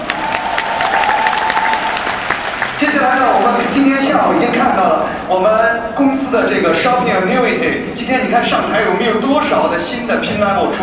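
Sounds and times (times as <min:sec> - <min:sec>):
audience applause for the speakers at a company event: 0:00.0 - 0:03.0
speech: 0:02.8 - 0:10.8.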